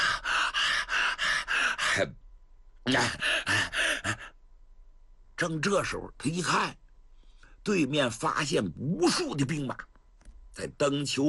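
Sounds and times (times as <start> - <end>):
storyteller imitating heavy panting of a fighter after battle: 0.0 - 2.0, 3.0 - 4.4
speech: 2.0 - 2.2, 2.8 - 3.6, 5.4 - 6.8, 7.6 - 9.9, 10.6 - 11.2.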